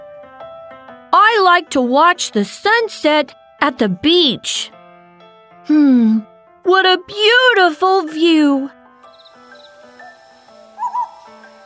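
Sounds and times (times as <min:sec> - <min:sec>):
speech: 0:01.1 - 0:04.8, 0:05.6 - 0:08.8
owl hooting: 0:09.2 - 0:11.6.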